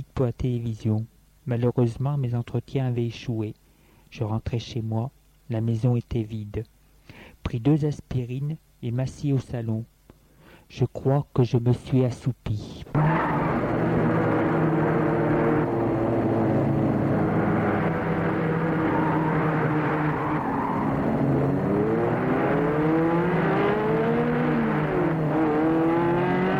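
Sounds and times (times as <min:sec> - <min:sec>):
speech: 0:00.2 - 0:06.8, 0:07.4 - 0:09.9, 0:10.7 - 0:13.1
arriving car engine running: 0:12.9 - 0:26.5.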